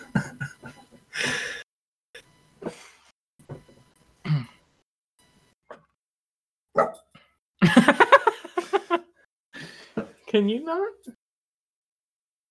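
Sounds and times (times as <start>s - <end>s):
laughter: 0.0s - 0.8s, 7.6s - 9.0s
female dog barking in the room sitting in a chair: 6.8s - 7.0s
speech: 10.3s - 11.2s.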